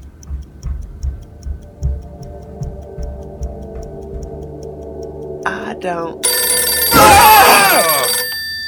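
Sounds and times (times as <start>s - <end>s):
steady high tone: 5.2s - 8.6s
speech: 5.8s - 6.4s
telephone ringing in a warbling electronic trill: 6.2s - 8.6s.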